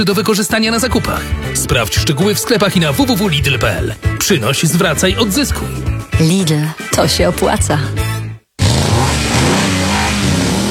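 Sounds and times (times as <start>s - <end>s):
speech: 0.0s - 8.1s
car engine revving: 8.6s - 10.7s.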